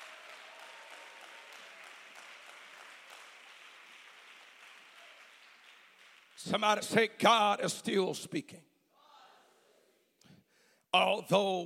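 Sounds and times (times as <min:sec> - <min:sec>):
crowd clapping: 0:00.0 - 0:07.0
speech: 0:06.4 - 0:08.7, 0:11.0 - 0:11.6.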